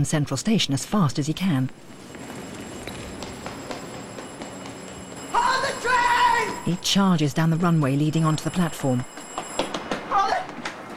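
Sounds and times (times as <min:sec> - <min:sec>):
speech: 0:00.0 - 0:02.0, 0:06.7 - 0:09.2
train doors closing at a platform in Grand Central Station: 0:01.6 - 0:10.9
brief high train wheel squeal: 0:01.8 - 0:07.6, 0:08.3 - 0:10.9.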